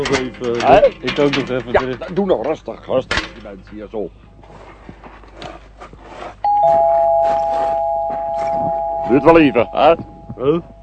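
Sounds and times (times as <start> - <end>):
speech: 0.0 - 4.2, 9.1 - 10.7
shuffling and rustling: 0.0 - 10.8
electronic doorbell chime at a house's front door: 6.5 - 10.8.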